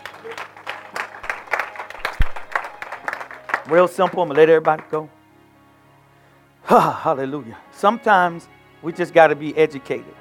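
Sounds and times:
church congregation clapping in a steady rhythm: 0.0s - 5.0s
speech: 3.7s - 5.2s, 6.7s - 10.1s.

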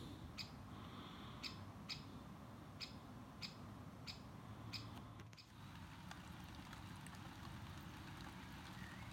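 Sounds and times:
great spotted woodpecker calling in Oxfordshire England: 0.4s - 0.6s, 1.4s - 2.2s, 2.8s - 5.6s
constant rain in Oxfordshire England: 5.5s - 9.1s
hail in Oxfordshire England: 5.6s - 9.1s.

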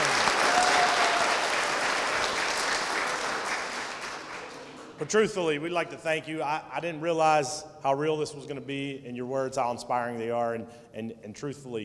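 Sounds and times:
audience applause at a conversation event at a children's museum: 0.0s - 5.0s
speech: 5.0s - 11.8s.

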